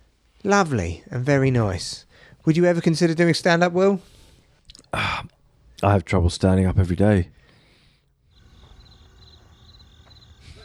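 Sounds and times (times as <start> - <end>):
speech: 0.4 - 4.2, 4.9 - 7.4
crickets chirping: 8.3 - 10.6.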